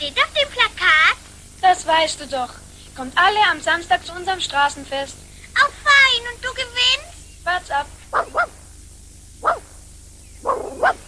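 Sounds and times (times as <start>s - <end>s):
faint low hum: 0.0s - 11.0s
speech: 1.9s - 5.8s, 7.5s - 8.4s
dog barking: 8.1s - 8.6s, 9.4s - 9.7s, 10.4s - 11.0s.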